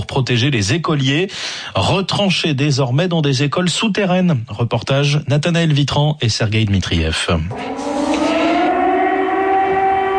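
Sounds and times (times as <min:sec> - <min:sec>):
speech: 0:00.1 - 0:07.9
air raid sirens wailing over a city about 30 km from the front line: 0:07.5 - 0:10.1.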